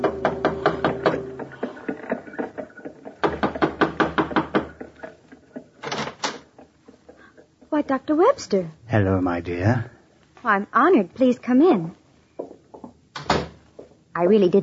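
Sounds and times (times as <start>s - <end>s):
rapid knocking on a door: 0.0s - 1.4s, 3.2s - 4.8s
speech: 7.9s - 12.0s, 14.2s - 14.6s.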